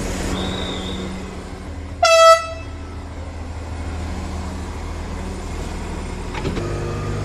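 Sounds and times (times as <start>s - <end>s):
old narrow-gauge train rolling rumble leaving a station: 0.0s - 7.2s
old narrow-gauge train locomotive whistle blast: 0.3s - 1.2s, 2.0s - 2.7s.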